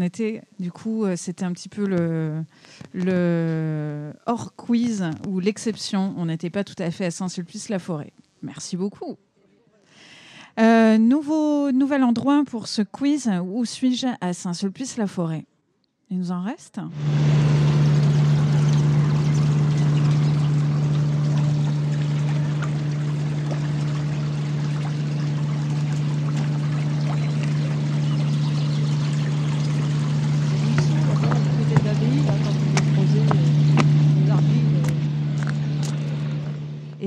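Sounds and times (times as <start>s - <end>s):
speech: 0.0s - 9.3s, 10.6s - 15.5s, 16.1s - 17.5s
construction machinery droning: 16.9s - 37.0s
stream water rushing: 17.0s - 36.9s.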